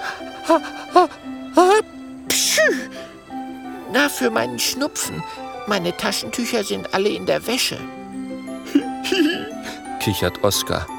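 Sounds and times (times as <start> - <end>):
speech: 0.5 - 3.2, 3.9 - 8.0, 10.0 - 10.9
person acting out a sneeze: 2.3 - 2.9.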